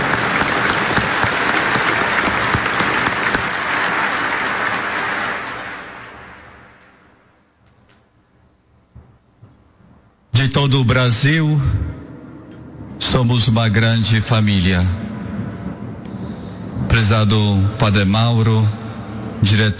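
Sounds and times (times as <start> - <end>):
congregation applauding in a large space: 0.0 - 7.1
speech: 11.0 - 11.9, 13.2 - 15.0, 17.0 - 18.8, 19.4 - 19.7.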